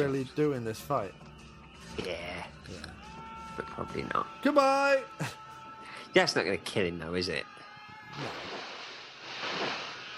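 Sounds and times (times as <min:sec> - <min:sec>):
speech: 0:00.0 - 0:01.4, 0:02.0 - 0:05.4, 0:06.1 - 0:07.6, 0:08.2 - 0:08.6
loud churning water splashing: 0:08.2 - 0:10.1.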